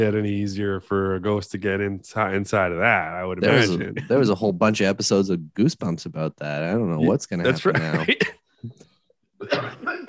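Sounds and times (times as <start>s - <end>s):
speech: 0.0s - 8.4s
harsh breathy throaty cough: 7.6s - 8.5s, 9.4s - 10.0s.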